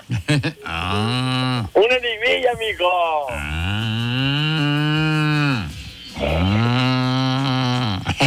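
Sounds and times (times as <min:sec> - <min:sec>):
speech: 0:00.3 - 0:04.4
cow bellowing moos: 0:00.7 - 0:01.8, 0:03.3 - 0:08.0.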